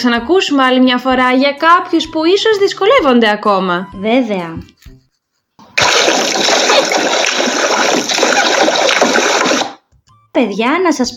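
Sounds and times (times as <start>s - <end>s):
speech: 0.0s - 4.7s, 6.0s - 7.3s, 10.4s - 11.1s
rushing water: 5.8s - 9.8s.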